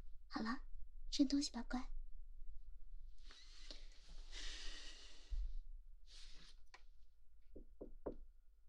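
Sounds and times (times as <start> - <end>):
speech: 0.3 - 2.0
knocking on a door: 7.5 - 8.3.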